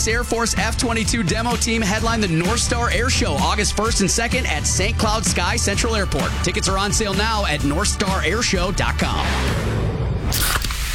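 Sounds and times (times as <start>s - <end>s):
speech: 0.0s - 10.7s
cola can cracking open with a sharp hiss: 10.3s - 10.9s.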